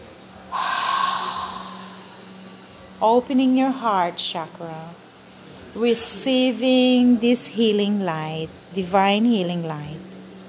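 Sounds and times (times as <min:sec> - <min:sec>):
faint steady hum: 0:00.0 - 0:10.4
long deep breath in during a guided meditation: 0:00.5 - 0:02.6
speech: 0:03.0 - 0:05.0, 0:05.7 - 0:10.1.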